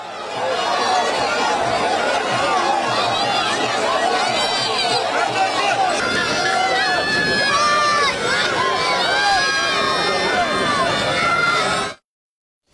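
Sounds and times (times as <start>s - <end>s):
crowd of fans cheering and shouting after a team training session: 0.0s - 12.0s
laughter: 0.1s - 11.9s.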